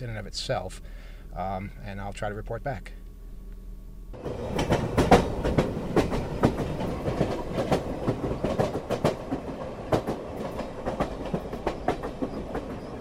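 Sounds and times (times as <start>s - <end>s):
speech: 0.0s - 3.0s, 4.1s - 4.8s
double-decker rush hour commuter train rolling along rails: 4.1s - 12.9s.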